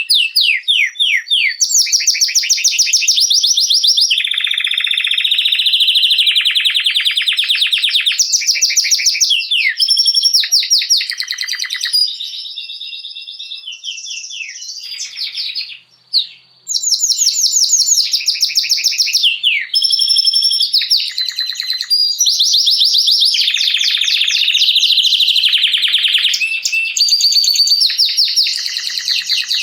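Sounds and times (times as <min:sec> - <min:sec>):
male Belgian canary singing loud rapid trills and rolls: 0:00.0 - 0:29.6.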